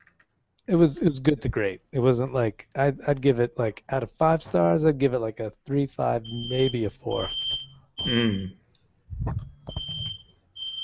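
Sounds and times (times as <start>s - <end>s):
speech: 0.7s - 9.5s
home smoke alarm beeping, set off by steam from a hot shower: 6.2s - 8.6s, 9.6s - 10.8s.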